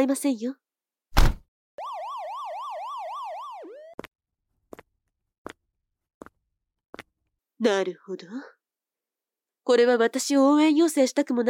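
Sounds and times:
speech: 0:00.0 - 0:00.6, 0:07.6 - 0:08.6, 0:09.6 - 0:11.4
police car siren wailing: 0:01.8 - 0:04.0.

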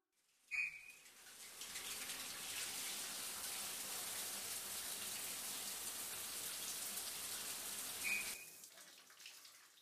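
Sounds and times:
running water rinsing soap foam off body: 0:00.5 - 0:09.8.

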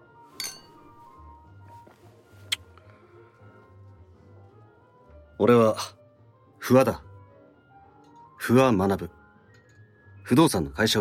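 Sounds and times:
brandy glasses clinking in a toast: 0:00.3 - 0:01.2
speech: 0:05.4 - 0:06.0, 0:06.7 - 0:07.1, 0:08.5 - 0:09.2, 0:10.3 - 0:10.9.

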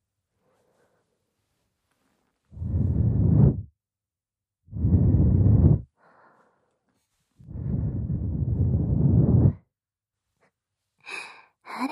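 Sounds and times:
slow airy breaths blown softly into a listener's ear: 0:00.4 - 0:01.4, 0:02.5 - 0:03.7, 0:04.7 - 0:09.7.

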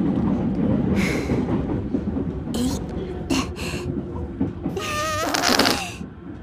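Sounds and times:
steady rumble of a moving train: 0:00.0 - 0:06.4
long squeaky fart on a train: 0:04.8 - 0:06.0.

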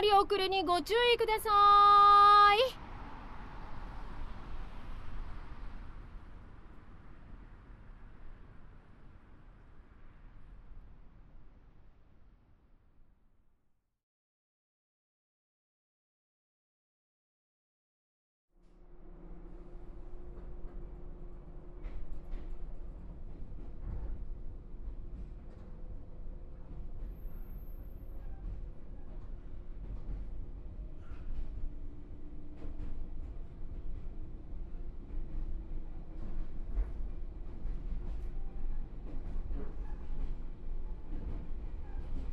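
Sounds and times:
train setting off and rumbling: 0:00.0 - 0:12.4, 0:18.6 - 0:42.3
speech: 0:00.1 - 0:02.8.

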